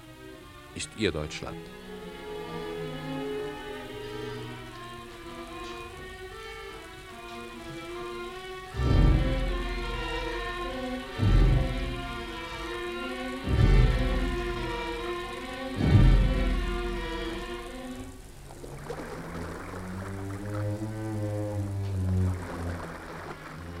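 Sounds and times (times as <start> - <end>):
speech: 0.8 - 1.9
rain falling on a street at night: 3.6 - 23.7
deep rumbling thuds: 8.8 - 12.7, 13.4 - 18.6.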